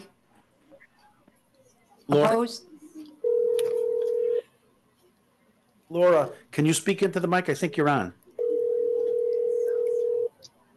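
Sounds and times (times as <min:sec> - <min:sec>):
faint room noise: 0:00.0 - 0:10.7
speech: 0:02.1 - 0:02.7, 0:05.9 - 0:08.2
steady single-pitch telephone tone: 0:03.2 - 0:04.4, 0:08.4 - 0:10.3.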